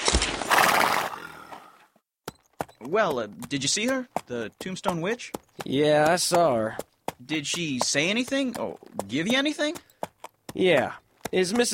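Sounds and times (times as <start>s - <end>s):
horse whinnying with a shrill neigh: 0.5s - 1.8s
speech: 2.8s - 9.9s, 10.6s - 11.7s.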